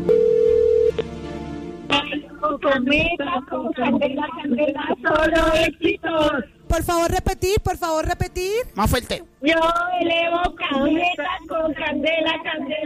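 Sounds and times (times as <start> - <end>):
telephone dialing beep: 0.1 - 1.0
speech: 2.7 - 12.8.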